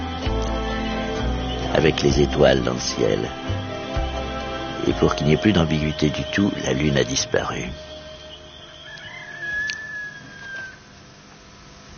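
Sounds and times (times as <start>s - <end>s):
faint outdoor hum: 0.0s - 11.9s
speech: 1.7s - 3.6s, 4.8s - 7.9s
rooster crowing: 8.0s - 11.1s.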